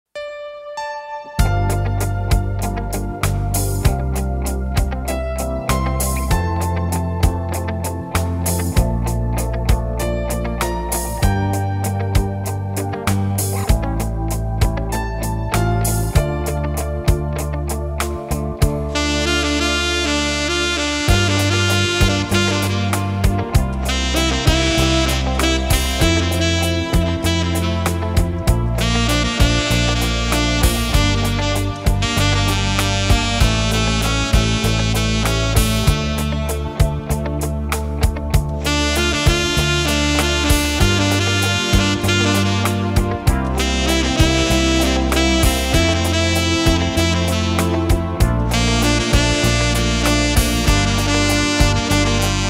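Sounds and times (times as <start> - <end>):
saxophone playing a cover: 1.4 - 52.4.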